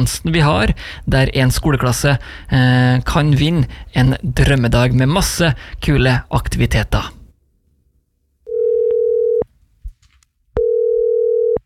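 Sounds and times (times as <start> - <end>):
speech: 0.0 - 7.2
telephone ringback tone on an outgoing call from a radio station: 8.5 - 9.4, 10.6 - 11.6.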